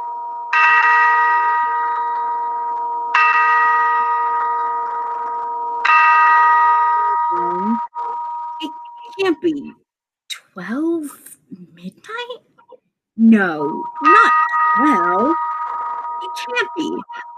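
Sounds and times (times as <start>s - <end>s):
clock chiming the hour with bell strokes: 0.0s - 9.7s, 13.4s - 17.3s
low steady hum: 4.4s - 17.3s
speech: 13.3s - 14.4s.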